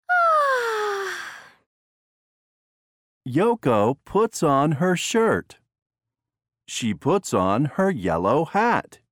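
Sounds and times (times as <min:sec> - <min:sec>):
child yawning: 0:00.1 - 0:01.5
speech: 0:03.3 - 0:05.6, 0:06.7 - 0:09.0.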